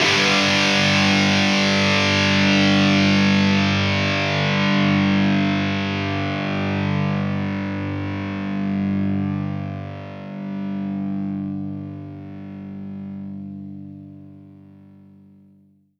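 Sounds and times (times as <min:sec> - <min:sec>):
guitar G power chord sustained: 0:00.0 - 0:12.4.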